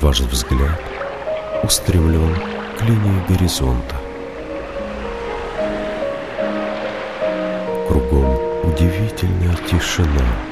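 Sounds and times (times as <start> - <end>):
speech: 0.0 - 1.0, 1.6 - 4.0, 7.9 - 10.4
ocean surf waves: 0.0 - 10.4
quiet sustained tones: 0.0 - 10.4.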